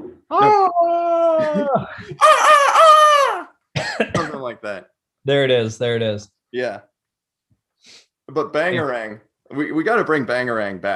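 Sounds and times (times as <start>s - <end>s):
speech: 0.3s - 2.8s, 5.2s - 6.9s, 7.8s - 10.9s
man imitating a rooster crow with his voice: 0.3s - 3.5s.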